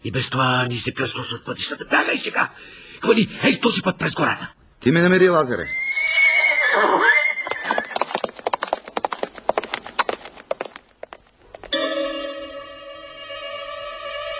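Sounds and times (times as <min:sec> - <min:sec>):
speech: 0:00.0 - 0:06.1
horse whinnying: 0:05.6 - 0:10.6
horse hooves clip-clopping: 0:07.4 - 0:11.9
sustained ringing tone: 0:11.7 - 0:13.8.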